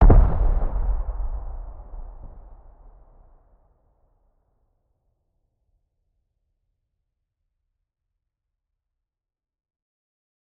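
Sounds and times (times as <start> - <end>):
distant C4 explosion: 0.0 - 3.5.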